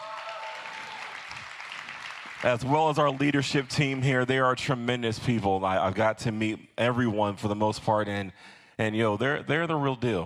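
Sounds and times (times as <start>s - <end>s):
faint whoops and cheers: 0.0s - 2.0s
large church crowd applauding: 0.0s - 4.2s
speech: 2.4s - 10.2s.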